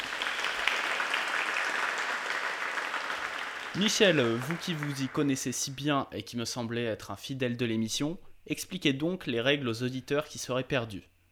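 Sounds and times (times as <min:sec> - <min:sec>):
crowd applause: 0:00.0 - 0:05.8
speech: 0:03.8 - 0:11.1.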